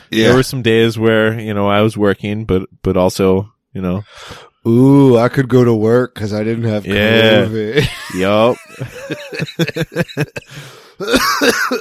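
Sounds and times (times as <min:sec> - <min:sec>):
speech: 0:00.1 - 0:11.7
laughter: 0:07.1 - 0:11.7
person coughing: 0:10.2 - 0:11.7.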